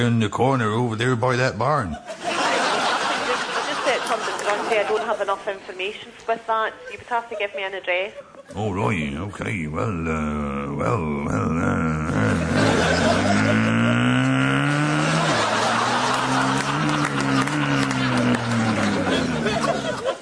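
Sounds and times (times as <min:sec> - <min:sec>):
speech: 0:00.0 - 0:02.2, 0:04.1 - 0:12.0
laughter: 0:01.6 - 0:05.8, 0:06.5 - 0:08.9, 0:10.8 - 0:20.2
motorbike engine revving: 0:12.1 - 0:19.4.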